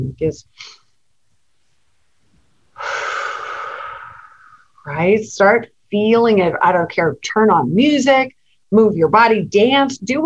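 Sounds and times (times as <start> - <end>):
speech: 0.0 - 0.8, 4.8 - 10.2
deep breath: 2.7 - 4.8.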